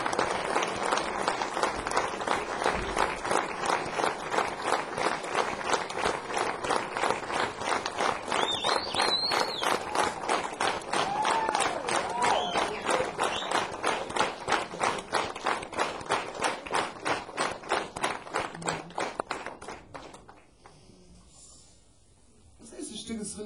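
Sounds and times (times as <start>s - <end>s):
audience applause: 0.0s - 20.6s
audience whistles: 8.3s - 9.8s, 12.2s - 13.7s.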